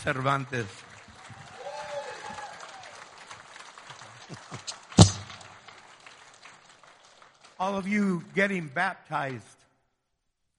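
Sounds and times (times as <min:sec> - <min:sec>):
speech: 0:00.0 - 0:00.9, 0:07.6 - 0:09.5
church audience applauding to welcome a guest: 0:00.0 - 0:08.7
loud sharp thump: 0:05.0 - 0:05.5.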